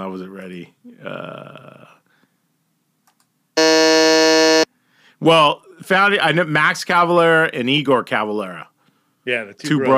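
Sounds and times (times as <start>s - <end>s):
speech: 0.0s - 2.0s, 5.2s - 9.9s
loud sustained electronic quiz buzzer: 3.6s - 4.7s.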